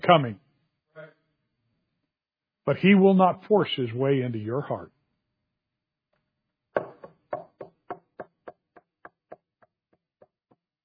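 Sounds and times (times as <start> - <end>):
speech: 0.1 - 0.4, 2.7 - 5.0
sharp knocks on wood: 6.8 - 8.3.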